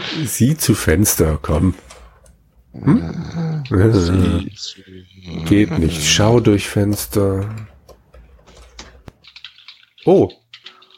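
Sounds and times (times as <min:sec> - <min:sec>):
speech: 0:00.2 - 0:01.9, 0:02.8 - 0:07.7, 0:10.0 - 0:10.4
typing on a computer keyboard: 0:07.4 - 0:10.9.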